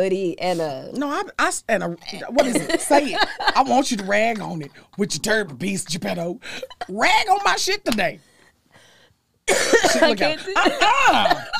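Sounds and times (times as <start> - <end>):
speech: 0.0 - 8.3, 9.5 - 11.5
laughter: 2.4 - 4.7, 10.0 - 11.5
woman rough rattling coughing: 9.5 - 11.5.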